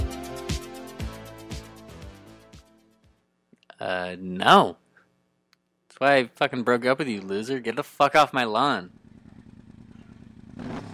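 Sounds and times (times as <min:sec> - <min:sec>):
speech: 0:03.8 - 0:04.8, 0:06.0 - 0:09.0
motorcycle engine idling and revving: 0:08.8 - 0:10.9.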